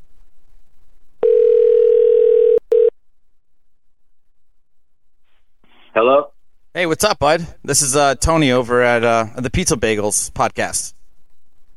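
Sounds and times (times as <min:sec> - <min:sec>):
phone call ringing tone on the line: 0:01.2 - 0:02.9
speech: 0:06.0 - 0:11.0.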